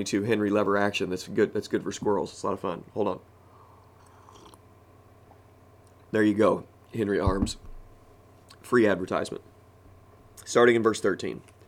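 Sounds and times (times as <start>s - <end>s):
speech: 0.0s - 3.3s, 6.1s - 7.7s, 8.6s - 9.5s, 10.4s - 11.5s
low steady hum: 0.0s - 11.6s
person sipping coffee: 3.9s - 4.7s.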